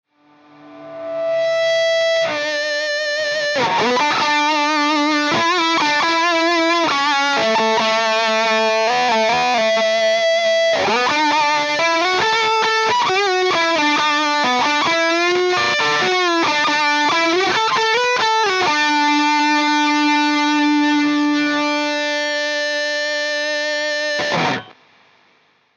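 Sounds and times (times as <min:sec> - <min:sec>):
Tweed Tele electric guitar with Range treble boost: 0:00.2 - 0:24.8.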